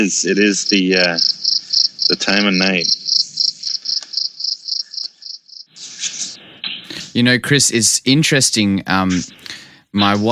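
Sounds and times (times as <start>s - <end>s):
speech: 0.0s - 1.4s, 2.1s - 3.0s, 7.2s - 10.3s
crickets chirping at night: 0.0s - 5.8s.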